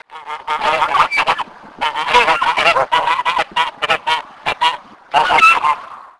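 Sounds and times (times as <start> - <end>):
goose: 0.0 - 6.0.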